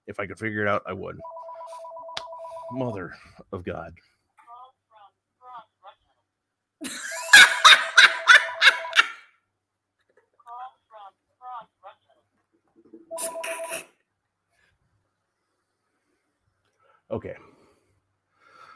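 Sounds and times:
speech: 0:00.1 - 0:01.8, 0:02.7 - 0:04.1, 0:17.1 - 0:17.5
landline telephone ringing with a trilling bell: 0:01.2 - 0:03.0, 0:07.6 - 0:09.2, 0:13.1 - 0:13.9
laughter: 0:06.8 - 0:09.2.

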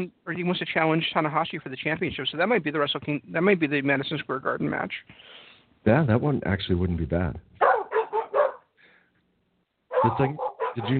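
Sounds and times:
speech: 0:00.0 - 0:07.5, 0:10.0 - 0:10.9
dog barking: 0:07.6 - 0:08.7, 0:09.9 - 0:10.9.

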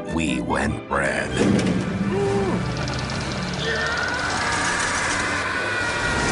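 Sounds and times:
speech: 0:00.0 - 0:02.3
car engine running: 0:01.8 - 0:05.4.

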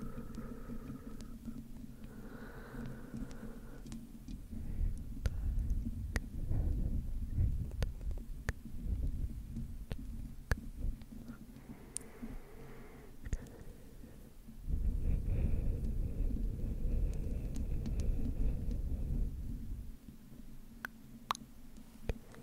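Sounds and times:
faint breathy whispering sounds: 0:00.0 - 0:07.7, 0:11.2 - 0:19.8
slow mic scratching with deep rumbling throb: 0:04.4 - 0:11.0, 0:14.6 - 0:20.0.

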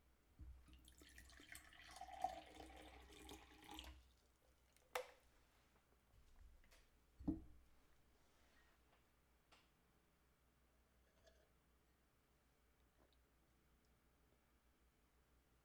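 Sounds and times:
drink pouring from screw-top bottle: 0:00.7 - 0:04.2.

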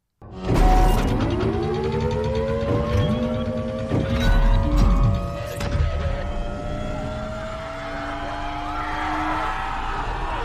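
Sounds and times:
rising engine whine in a film action sequence: 0:00.5 - 0:10.3.

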